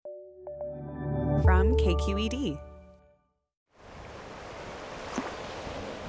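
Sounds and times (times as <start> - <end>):
short musical tone: 0.1 - 3.2
speech: 1.4 - 2.7
Pacific Ocean waves washing onto the beach at the Carmel River mouth: 3.8 - 6.0.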